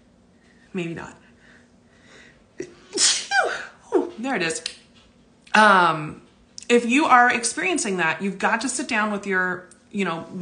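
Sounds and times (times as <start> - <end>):
speech: 0.7 - 1.2, 4.2 - 4.8, 5.6 - 10.4
person sneezing: 2.6 - 3.8.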